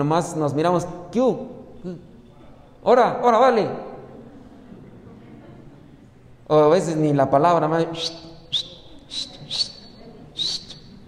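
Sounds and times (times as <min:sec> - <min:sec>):
speech: 0:00.0 - 0:02.1, 0:02.8 - 0:03.9, 0:06.5 - 0:09.6
person whistling a greeting: 0:08.0 - 0:11.0.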